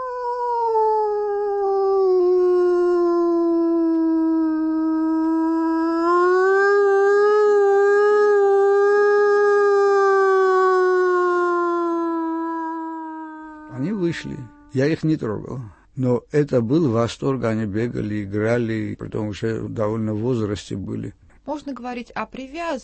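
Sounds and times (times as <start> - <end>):
person imitating a wolf howl: 0.0 - 15.0
speech: 14.2 - 22.8.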